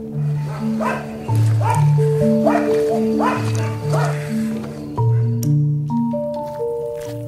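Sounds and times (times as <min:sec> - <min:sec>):
several stray dogs barking at night by rubbish containers in a city: 0:00.0 - 0:05.5
sustained musical tones: 0:00.0 - 0:07.0.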